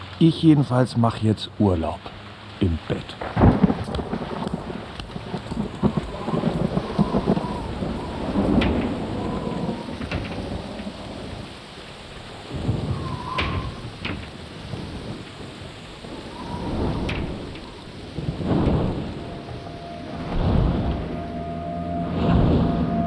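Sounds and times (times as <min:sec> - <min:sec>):
steady rain falling in a town: 0:00.0 - 0:23.0
thunder rumbling over a town: 0:00.0 - 0:23.0
speech: 0:00.2 - 0:03.6.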